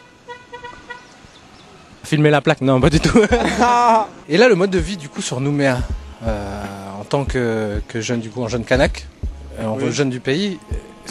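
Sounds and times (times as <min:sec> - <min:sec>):
car horn toots: 0:00.0 - 0:01.1
road noise rumble: 0:00.0 - 0:11.0
speech: 0:02.1 - 0:11.0
laughter: 0:02.9 - 0:04.1.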